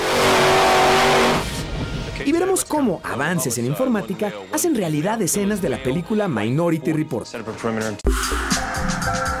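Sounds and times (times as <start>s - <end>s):
monster truck engine revving: 0.0s - 1.6s
speech: 2.7s - 9.3s.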